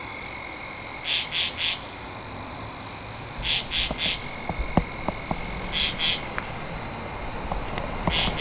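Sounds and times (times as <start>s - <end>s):
high-pitched background hum of insects: 0.2s - 8.3s
katydid rasping in three-pulse bursts: 3.2s - 8.3s.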